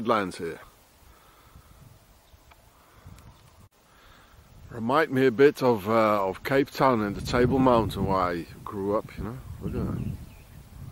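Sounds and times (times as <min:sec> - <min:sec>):
speech: 0:00.0 - 0:00.7, 0:04.7 - 0:10.2
wind gusts buffeting the microphone outdoors: 0:01.1 - 0:03.7, 0:04.3 - 0:05.0, 0:06.2 - 0:10.9.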